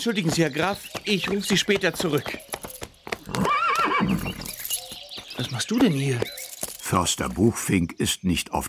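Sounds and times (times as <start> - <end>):
speech: 0.0 - 2.6, 5.4 - 8.6
horse hoof knocks: 0.0 - 6.9
horse without a rider whinnying: 3.2 - 4.6.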